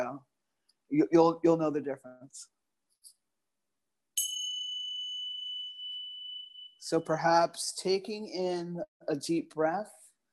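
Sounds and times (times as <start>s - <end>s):
speech: 0.9s - 3.2s, 6.9s - 10.0s
meditation bell ringing: 4.2s - 7.5s.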